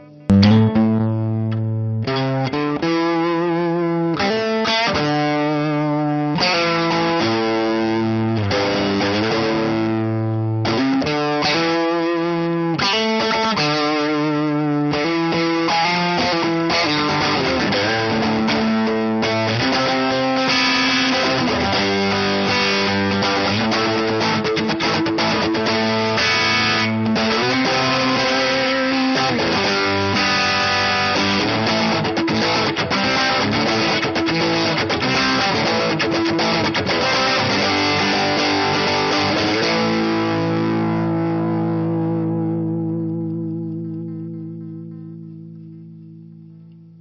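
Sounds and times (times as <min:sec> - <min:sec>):
Telecaster electric guitar through Vox AC15 amplifier: 0:00.0 - 0:46.9.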